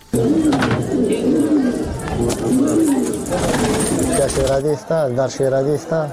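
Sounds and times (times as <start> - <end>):
pigeons cooing: 0.0 - 4.9
pigeon keepers' voices talking: 0.0 - 6.1.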